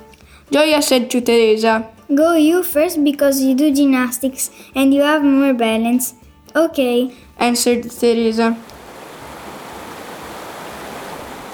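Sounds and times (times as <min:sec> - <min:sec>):
speech: 0:00.5 - 0:08.8
fast-running stream water rushing: 0:08.6 - 0:11.5.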